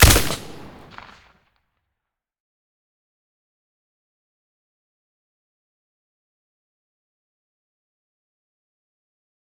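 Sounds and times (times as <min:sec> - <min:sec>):
AK-103 rifle shots with silencer: 0:00.0 - 0:01.2.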